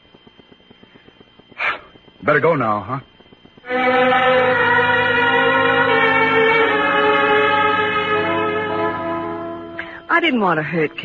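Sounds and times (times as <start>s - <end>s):
speech: 2.2s - 3.1s, 3.7s - 4.6s, 10.2s - 11.0s
train horn-like chord as a train departs: 3.7s - 11.0s.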